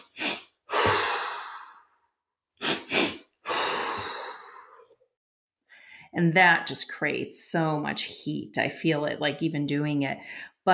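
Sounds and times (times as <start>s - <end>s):
short sniffing inhales through the nose in a breathing exercise: 0.0s - 1.6s, 2.6s - 4.0s
long forceful exhale through the mouth in a breathing exercise: 0.0s - 1.9s, 2.6s - 4.9s
speech: 6.2s - 10.7s.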